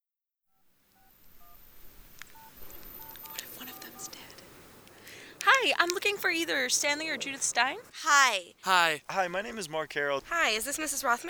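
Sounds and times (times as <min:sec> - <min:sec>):
touch-tone beeps from a phone keypad: 0:01.0 - 0:04.8
speech: 0:06.2 - 0:11.2.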